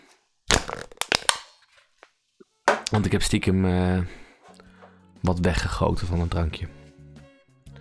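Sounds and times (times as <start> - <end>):
empty drink can being crushed: 0.0 - 2.0, 2.7 - 3.1
speech: 2.9 - 4.2, 5.2 - 6.8.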